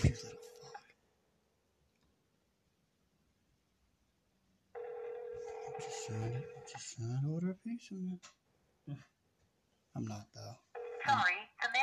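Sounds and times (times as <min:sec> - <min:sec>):
electronic ringback tone of an outgoing phone call: 0:04.8 - 0:06.9
speech: 0:05.8 - 0:09.2, 0:10.0 - 0:11.8.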